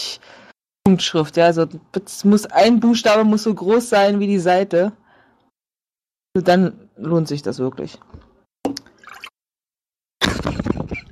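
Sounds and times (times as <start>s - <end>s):
speech: 0.9s - 5.0s, 6.4s - 8.2s
water splashing and sloshing: 8.7s - 9.4s.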